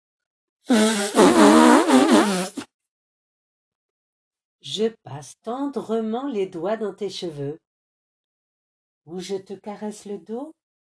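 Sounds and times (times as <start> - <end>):
speech: 0.6 - 1.2, 4.6 - 7.6, 9.0 - 10.6
wet raspberry kisses blown against skin: 0.7 - 2.7.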